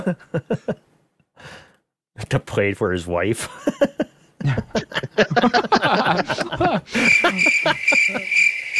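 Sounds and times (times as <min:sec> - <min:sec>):
speech: 0:00.0 - 0:01.6, 0:02.2 - 0:08.7
burst of laughter: 0:04.5 - 0:08.4
steady high-pitched cricket chirping sound effect: 0:07.0 - 0:08.7.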